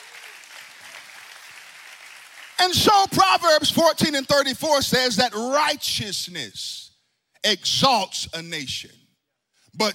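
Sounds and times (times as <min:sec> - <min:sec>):
audience applause: 0:00.0 - 0:02.6
speech: 0:02.6 - 0:06.8, 0:07.4 - 0:09.0, 0:09.8 - 0:09.9.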